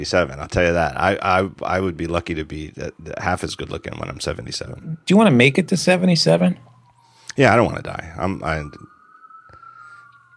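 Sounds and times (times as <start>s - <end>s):
speech: 0.0s - 6.7s, 7.4s - 8.9s
emergency siren wailing outside in the city: 0.0s - 10.3s.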